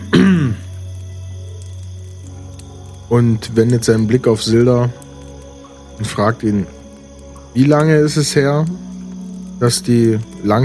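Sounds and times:
throat clearing: 0.0 - 0.7
speech: 3.1 - 5.0, 6.0 - 6.8, 7.6 - 8.9, 9.6 - 10.6.

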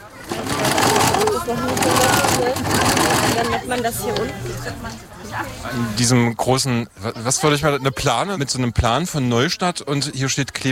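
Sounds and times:
sewing machines running: 0.0 - 3.9
voices chattering in a busy room: 0.0 - 10.7
speech: 3.7 - 10.7.

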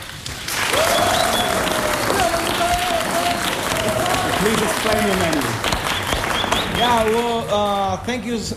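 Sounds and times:
audience applause: 0.0 - 7.5
faint cheer or whistle: 0.7 - 2.8, 5.7 - 7.1
speech: 4.5 - 5.7, 6.8 - 8.5.

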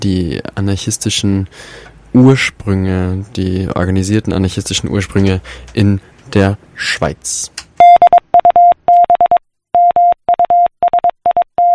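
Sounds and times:
speech: 0.0 - 7.6
Morse code message beeps sent by telegraph: 7.8 - 11.7.

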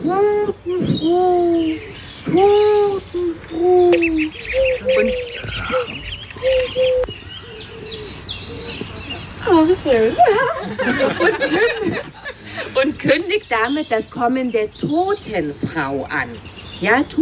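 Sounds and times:
speech: 0.0 - 2.7, 9.6 - 12.1, 12.8 - 17.2
birds chirping and twittering: 0.0 - 17.2
dove cooing: 2.6 - 9.2
laughter: 3.9 - 6.1, 9.9 - 13.0.

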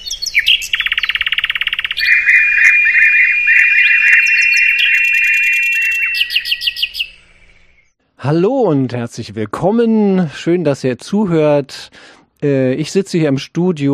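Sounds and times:
thrush nightingale singing: 0.0 - 8.0
speech: 8.2 - 13.9.

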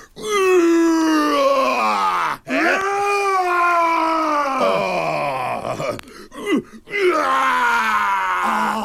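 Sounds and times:
human voice imitating a roar: 0.3 - 5.8, 7.0 - 8.8
breaths: 5.8 - 6.9.

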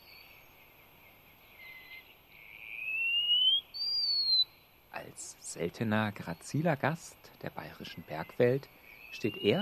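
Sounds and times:
wallcreeper call with thin drawn-out high whistles: 1.6 - 4.6, 9.0 - 9.6
speech: 5.1 - 9.6.

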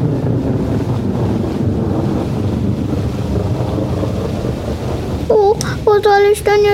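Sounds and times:
heavy rain: 0.0 - 6.7
speech: 6.0 - 6.7.

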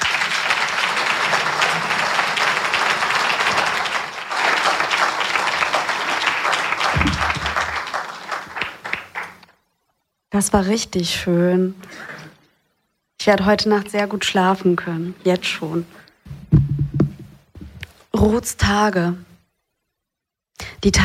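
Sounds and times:
audience applause: 0.0 - 9.6
speech: 10.4 - 12.1, 13.3 - 16.0, 18.2 - 19.3, 20.8 - 21.0.

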